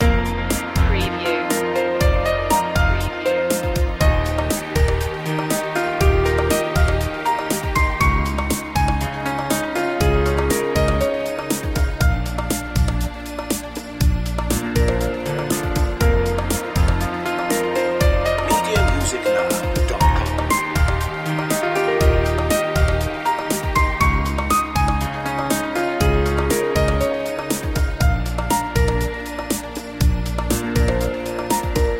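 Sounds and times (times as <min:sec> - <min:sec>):
string beats loop: 0:00.0 - 0:31.9.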